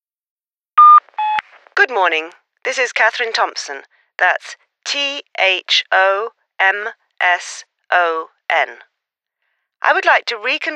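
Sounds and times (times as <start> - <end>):
company answering machine electronic beep: 0.8 - 1.4
speech: 1.7 - 8.9, 9.8 - 10.7.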